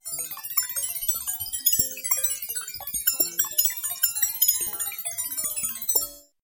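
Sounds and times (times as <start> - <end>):
electronic data transmission sounds: 0.0 - 6.3.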